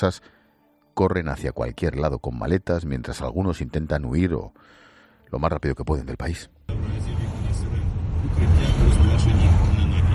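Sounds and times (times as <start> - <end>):
speech: 0.0 - 0.4, 1.0 - 7.2, 8.3 - 9.7
car engines idling in a long queue at petrol stations: 6.7 - 10.1.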